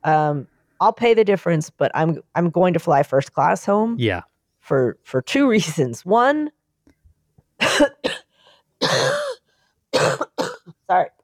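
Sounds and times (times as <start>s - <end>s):
speech: 0.0s - 6.6s, 7.6s - 8.2s, 8.8s - 9.3s, 10.9s - 11.2s
harsh coughs: 7.6s - 10.8s.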